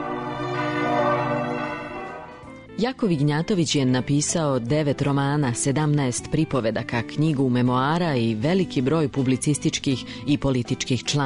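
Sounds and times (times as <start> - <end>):
church bells ringing: 0.0 - 2.5
speech: 2.8 - 11.2.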